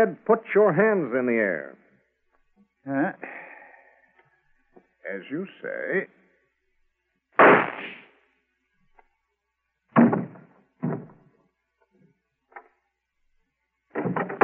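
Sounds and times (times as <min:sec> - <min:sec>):
speech: 0:00.0 - 0:01.8, 0:02.8 - 0:03.4, 0:05.0 - 0:06.2
faint pop: 0:07.4 - 0:08.1
gunshots from a small flat-handled gun: 0:07.4 - 0:08.1, 0:10.0 - 0:11.0.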